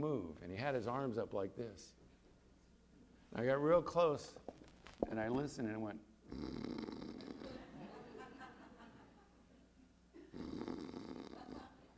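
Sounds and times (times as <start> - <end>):
speech: 0.0 - 2.0, 3.3 - 7.3
voice imitating gentle snoring: 6.3 - 7.6, 10.3 - 11.8
laughter: 7.5 - 9.4.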